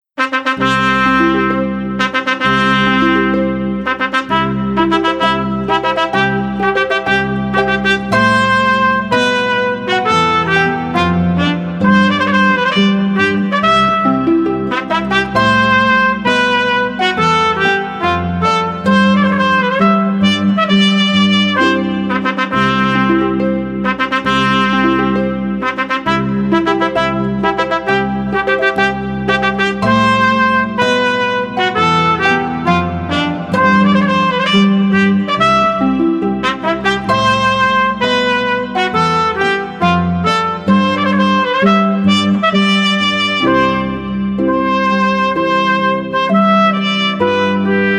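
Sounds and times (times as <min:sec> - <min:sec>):
trumpet: 0:00.1 - 0:47.9
harp: 0:00.2 - 0:47.9.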